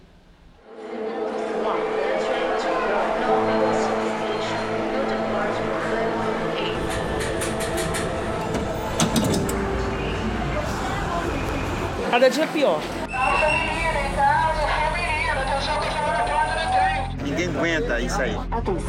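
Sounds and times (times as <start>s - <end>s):
indistinct murmur of voices: 0.7s - 18.8s
commuter train in Rio de Janeiro rolling on rails: 3.0s - 15.6s
train metallic clacks and squeals: 6.9s - 9.7s
speech: 12.2s - 13.0s, 17.8s - 18.8s.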